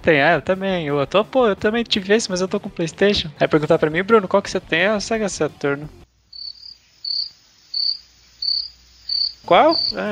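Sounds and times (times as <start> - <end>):
speech: 0.0 - 6.0, 9.5 - 10.1
quiet hiss: 5.6 - 10.1
cricket chirping in high-pitched trills: 6.2 - 10.1.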